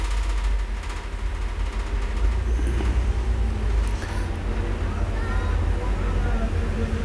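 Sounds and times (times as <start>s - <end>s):
continuous city noise: 0.0s - 7.0s
cars passing in street traffic: 2.4s - 7.0s
faint indistinct voices: 2.4s - 7.0s.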